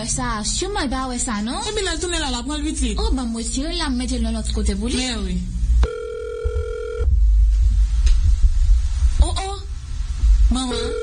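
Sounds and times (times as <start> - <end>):
speech: 0.0 - 5.6, 10.6 - 11.0
phone ringing with a WhatsApp call tone: 5.8 - 7.1, 10.7 - 11.0
rumbling handling noise: 5.8 - 11.0.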